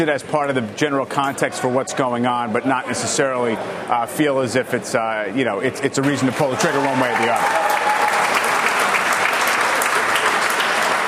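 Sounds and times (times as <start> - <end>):
speech: 0.0 - 7.9
sizable crowd applauding: 6.0 - 11.0.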